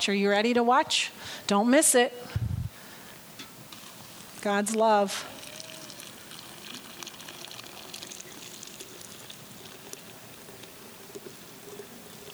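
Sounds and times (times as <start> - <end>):
speech: 0.0 - 2.5, 4.4 - 5.4
hot water being poured onto a picture, splashing and trickling: 2.9 - 12.3.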